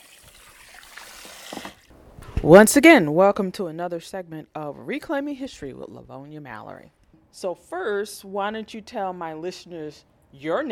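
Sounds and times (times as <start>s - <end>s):
trickling water in a salon: 0.0s - 1.9s
speech: 2.4s - 10.7s.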